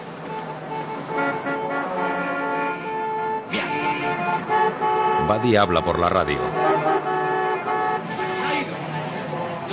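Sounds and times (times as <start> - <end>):
steady traffic noise of stopped cars: 0.0 - 9.7
car horns honking in a traffic jam: 0.2 - 9.7
indistinct voices: 5.2 - 6.6
speech: 5.3 - 6.9.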